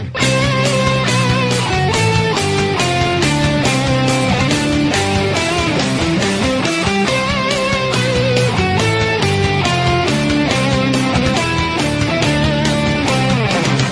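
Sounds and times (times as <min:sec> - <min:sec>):
march played as rock music: 0:00.2 - 0:13.9.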